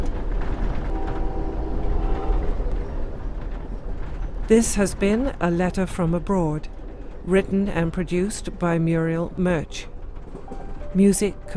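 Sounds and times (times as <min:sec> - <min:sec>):
train on the Pacific Coast Railway rumbling along the rails: 0:00.0 - 0:11.5
speech: 0:04.5 - 0:11.5.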